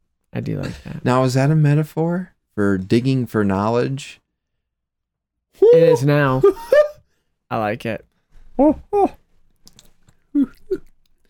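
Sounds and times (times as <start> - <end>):
speech: 0.4 - 4.2, 5.6 - 6.7, 7.5 - 9.2
man chewing: 9.5 - 11.2.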